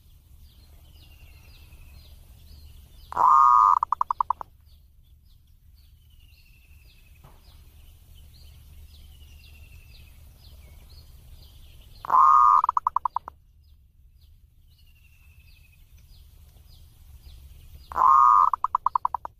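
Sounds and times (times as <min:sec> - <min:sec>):
faint thin chirps from other birds: 0:00.0 - 0:19.3
zebra dove singing purring coo song: 0:03.1 - 0:04.5, 0:12.0 - 0:13.3, 0:17.8 - 0:19.3.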